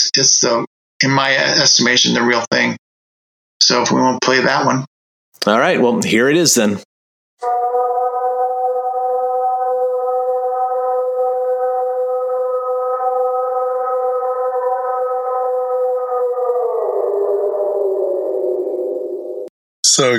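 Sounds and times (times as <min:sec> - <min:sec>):
speech: 0:00.0 - 0:02.8, 0:03.6 - 0:07.6, 0:20.0 - 0:20.1
long drawn-out Ohio howl: 0:07.4 - 0:19.5.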